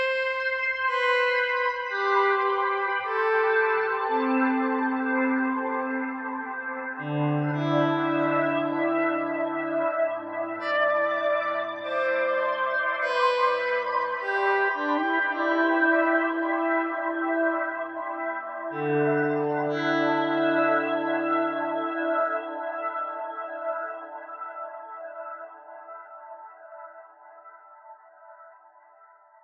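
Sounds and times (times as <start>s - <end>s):
guitar notes swelling with slow attack effect and echo: 0.0s - 24.1s.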